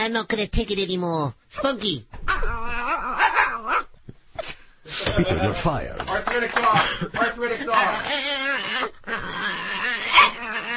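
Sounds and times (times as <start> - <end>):
speech: 0.0 - 3.4, 5.0 - 9.6
person imitating an arthritic dog whimpering: 2.3 - 3.9, 7.8 - 10.7
laughter: 5.0 - 8.0.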